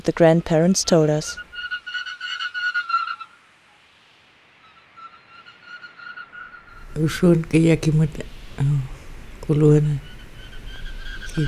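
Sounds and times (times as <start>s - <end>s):
speech: 0.0s - 1.4s, 7.0s - 8.9s, 9.5s - 10.1s
common snipe grating pulsed notes: 6.8s - 11.4s.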